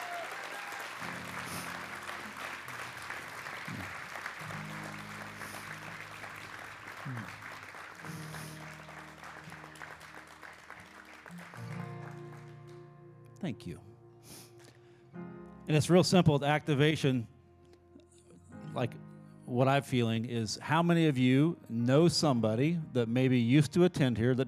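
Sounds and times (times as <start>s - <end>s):
large crowd clapping for a senior pastor: 0.0s - 13.0s
speech: 7.1s - 7.4s, 13.4s - 13.9s, 15.7s - 17.3s, 18.8s - 24.4s.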